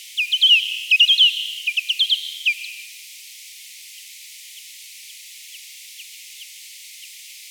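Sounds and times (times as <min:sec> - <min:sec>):
Barbastella barbastellus social calls in Corrèze: 0:00.2 - 0:02.8.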